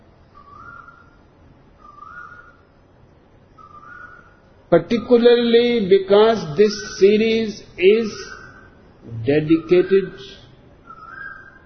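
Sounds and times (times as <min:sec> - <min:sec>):
soft constant hiss: 0:00.0 - 0:11.6
cuckoo calling in a forest: 0:00.3 - 0:02.9, 0:03.5 - 0:05.2, 0:06.6 - 0:11.6
speech: 0:04.7 - 0:08.4, 0:09.0 - 0:10.4.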